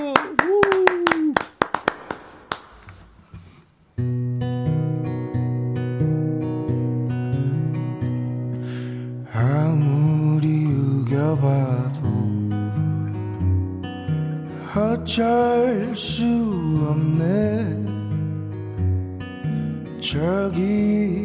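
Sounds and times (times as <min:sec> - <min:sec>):
audience hand clapping before a live song: 0:00.0 - 0:03.3
strummed acoustic guitar: 0:02.7 - 0:21.2
person singing: 0:09.2 - 0:12.6, 0:14.5 - 0:18.1, 0:19.9 - 0:21.2
speech: 0:15.1 - 0:17.8.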